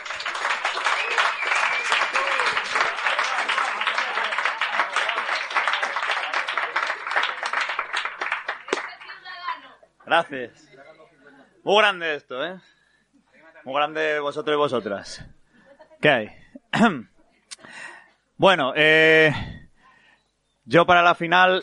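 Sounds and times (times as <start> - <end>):
cheers: 0.0 - 8.1
crowd applauding a performer at a verse competition final: 0.0 - 9.6
speech: 10.1 - 10.7, 11.6 - 12.7, 13.6 - 15.4, 16.0 - 17.1, 18.4 - 19.4, 20.7 - 21.6.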